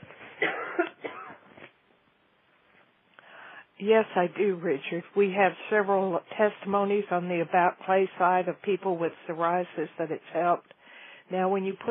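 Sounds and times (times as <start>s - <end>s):
person coughing from a tickle in the throat: 0.4s - 1.4s
speech: 3.8s - 11.8s.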